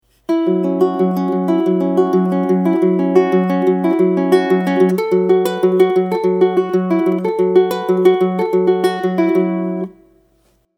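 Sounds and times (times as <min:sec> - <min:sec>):
fast ukulele riff: 0:00.3 - 0:10.0.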